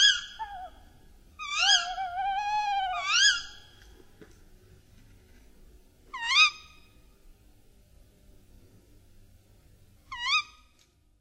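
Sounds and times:
tawny owl short rising call: 0:00.0 - 0:03.7, 0:06.1 - 0:06.8, 0:10.1 - 0:10.7
low background rumble: 0:00.0 - 0:11.1.

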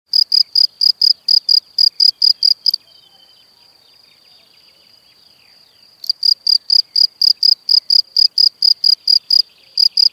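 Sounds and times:
cricket chirping in high pulsed chirps: 0:00.1 - 0:10.1.

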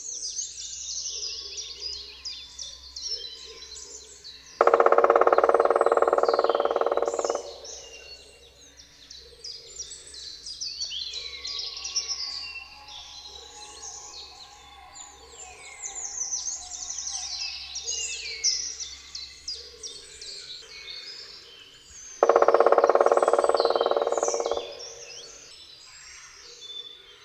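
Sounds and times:
chorus of chirping songbirds: 0:00.0 - 0:27.2
black woodpecker drumming: 0:04.6 - 0:08.6, 0:22.2 - 0:25.5.

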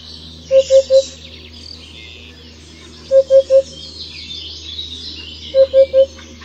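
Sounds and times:
faint higher bird chatter: 0:00.0 - 0:06.4
Eurasian hoopoe hooting: 0:00.5 - 0:01.3, 0:02.2 - 0:04.3, 0:05.3 - 0:06.4.

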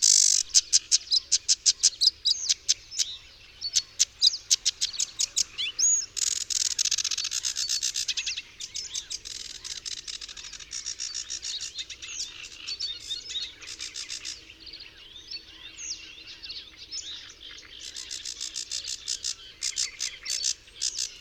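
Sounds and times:
sedge warbler song: 0:00.0 - 0:21.2.

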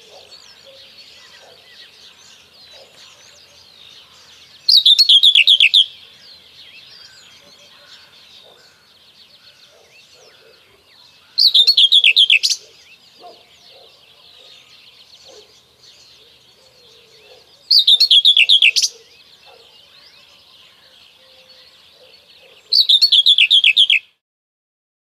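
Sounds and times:
common whitethroat chattering song: 0:00.0 - 0:24.2.

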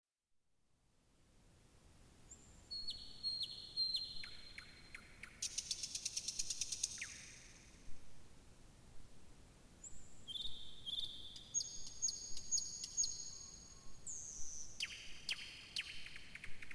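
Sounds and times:
thrush nightingale singing: 0:02.3 - 0:07.7, 0:09.8 - 0:16.7.

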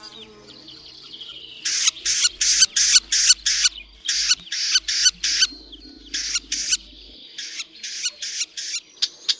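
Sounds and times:
male red-backed shrike smacking calls at nest: 0:01.6 - 0:08.9.

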